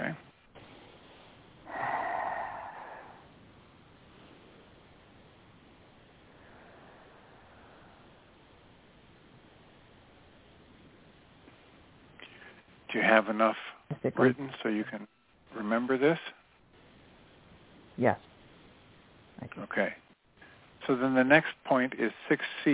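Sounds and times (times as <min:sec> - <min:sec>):
quiet hiss: 0:00.0 - 0:22.7
person breathing: 0:00.6 - 0:03.3, 0:06.3 - 0:08.4, 0:12.2 - 0:12.7
speech: 0:12.9 - 0:16.4, 0:18.0 - 0:18.3, 0:19.6 - 0:20.0, 0:20.8 - 0:22.7.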